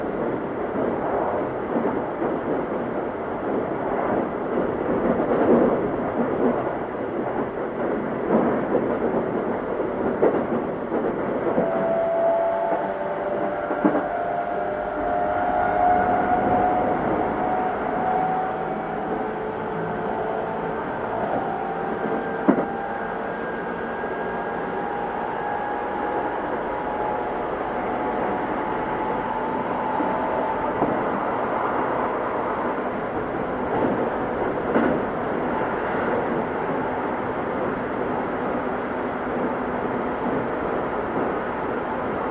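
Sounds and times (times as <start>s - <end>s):
commuter train rumbling at steady speed: 0.0s - 42.3s
rail joints clicking and thumping: 0.0s - 42.3s.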